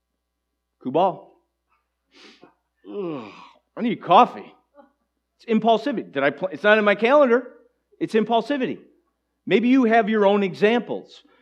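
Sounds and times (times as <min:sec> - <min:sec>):
speech: 0:00.8 - 0:01.3, 0:02.1 - 0:04.6, 0:05.4 - 0:11.3
person yawning: 0:02.8 - 0:03.6.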